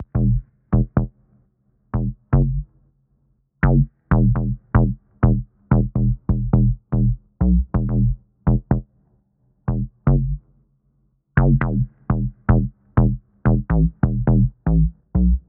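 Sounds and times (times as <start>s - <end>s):
bass synth in E: 0.0s - 1.0s, 2.0s - 2.6s, 3.6s - 8.8s, 9.7s - 10.4s, 11.4s - 15.4s.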